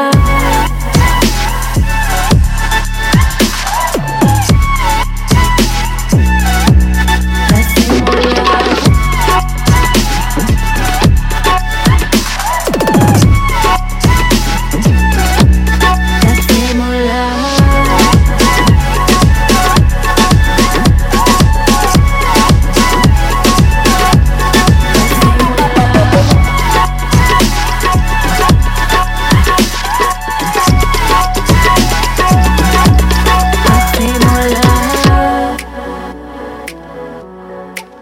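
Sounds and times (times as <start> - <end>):
tabla: 0.2 - 16.8, 17.6 - 35.7
EDM music: 0.2 - 36.8.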